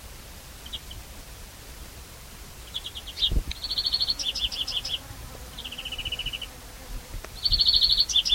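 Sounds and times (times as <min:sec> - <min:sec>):
European greenfinch Chloris chloris calls: 0:00.6 - 0:01.0, 0:02.6 - 0:06.6, 0:07.4 - 0:08.3.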